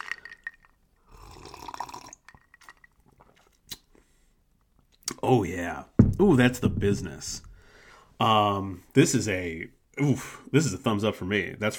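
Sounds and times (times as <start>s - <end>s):
mint-flavoured drink pouring into a glass: 0.0s - 3.6s
speech: 5.2s - 7.5s, 8.2s - 11.7s.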